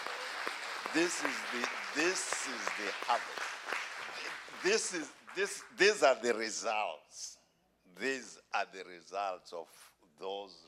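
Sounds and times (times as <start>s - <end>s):
audience clapping hands: 0.0s - 5.8s
speech: 1.0s - 7.4s, 8.0s - 10.6s.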